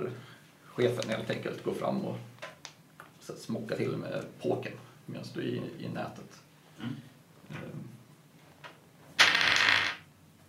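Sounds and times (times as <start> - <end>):
speech: 0.0 - 2.4, 3.3 - 8.0
dice clattering and rolling across a hard tabletop: 9.2 - 10.1.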